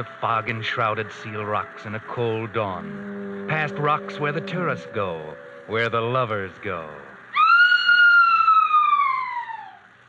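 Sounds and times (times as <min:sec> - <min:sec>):
speech: 0:00.0 - 0:07.1
faint noise: 0:00.0 - 0:10.0
girl screaming: 0:07.3 - 0:09.8.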